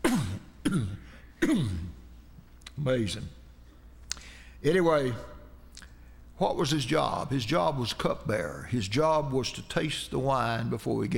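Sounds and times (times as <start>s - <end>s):
person clearing throat: 0.0s - 2.0s
speech: 0.7s - 2.0s, 2.8s - 3.4s, 4.6s - 5.3s, 6.4s - 11.1s.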